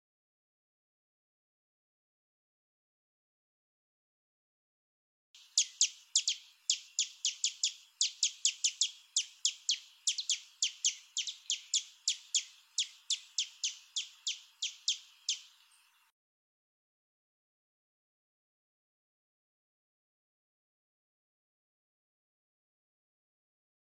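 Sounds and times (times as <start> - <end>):
tico tico de barrete ruivo singing: 5.4 - 16.1.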